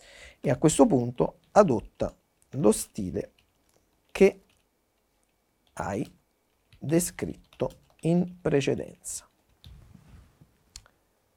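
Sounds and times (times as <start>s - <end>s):
speech: 0.4s - 3.4s, 4.2s - 4.4s, 5.8s - 6.2s, 6.8s - 9.3s
keyboard clicks: 1.0s - 8.5s.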